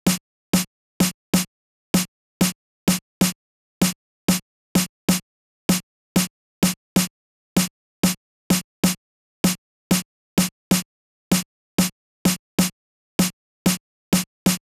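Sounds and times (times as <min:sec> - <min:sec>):
snare drum in big room house style: 0:00.1 - 0:14.6.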